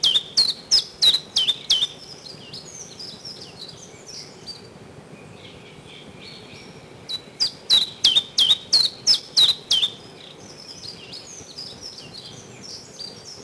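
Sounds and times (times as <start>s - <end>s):
common chiffchaff song of sharp even notes in spring: 0.0s - 13.4s
faint high twittering: 0.0s - 13.4s.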